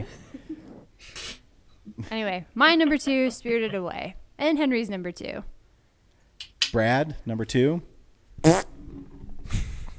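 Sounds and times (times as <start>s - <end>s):
speech: 2.0s - 5.5s, 6.7s - 8.7s
voice imitating a fart with blubbery bursts: 8.4s - 9.1s.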